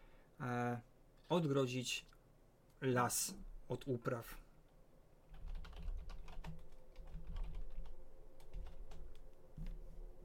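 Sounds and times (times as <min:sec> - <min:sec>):
speech: 0:00.4 - 0:02.2, 0:02.8 - 0:04.4
typing on a computer keyboard: 0:05.3 - 0:09.8.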